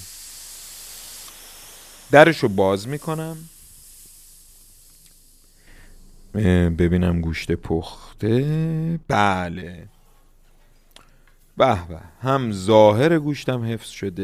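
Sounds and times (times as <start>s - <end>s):
steam escaping from a pressure cooker cooking meat: 0.0s - 6.9s, 11.7s - 14.2s
speech: 2.1s - 3.5s, 6.3s - 9.9s, 11.6s - 14.2s.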